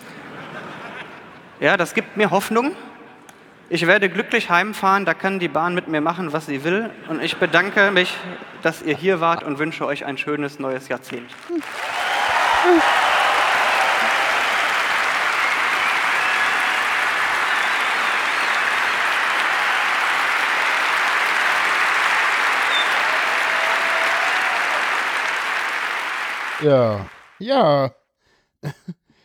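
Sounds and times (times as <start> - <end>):
laughter: 0.0 - 1.7, 6.9 - 9.5, 11.5 - 25.0
speech: 1.6 - 2.9, 3.7 - 12.0, 12.6 - 13.0, 26.6 - 28.0, 28.6 - 28.9
audience applause from a crowd after a statistics lecture: 11.1 - 27.4.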